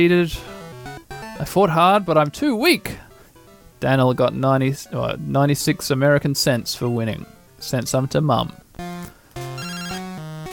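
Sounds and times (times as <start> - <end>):
speech: 0.0 - 0.5, 1.4 - 3.0, 3.8 - 8.6
phone ringing with a bright melodic ringtone for an incoming call: 0.4 - 1.6, 8.8 - 10.5.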